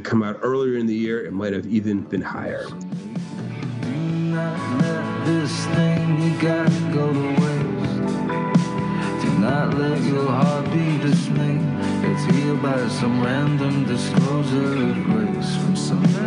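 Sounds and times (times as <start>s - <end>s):
speech: 0.0s - 3.1s, 4.4s - 7.5s, 9.4s - 16.2s
full-band rock song with male vocals, driving guitars and drums: 3.8s - 16.2s.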